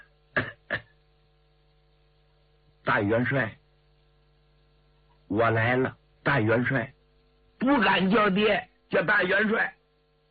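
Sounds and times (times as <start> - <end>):
person giving a light double cough to announce oneself: 0.4 - 1.0
speech: 2.9 - 3.6, 5.3 - 7.0, 7.6 - 9.8.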